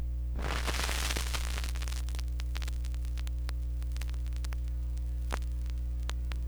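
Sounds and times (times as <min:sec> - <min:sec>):
record crackle: 0:00.0 - 0:06.4.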